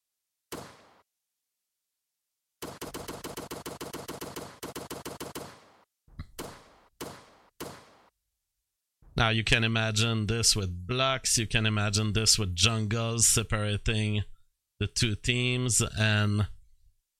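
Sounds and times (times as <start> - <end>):
video game gunfire with single shots and automatic bursts: 0.5 - 1.0, 2.6 - 8.1
speech: 9.2 - 16.6.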